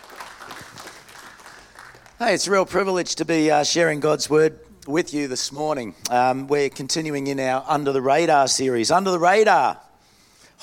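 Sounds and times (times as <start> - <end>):
audience applauding: 0.0 - 2.6
speech: 2.2 - 9.8.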